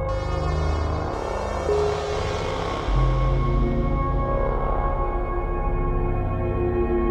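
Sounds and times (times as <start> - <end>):
groan wash: 0.1 - 6.9.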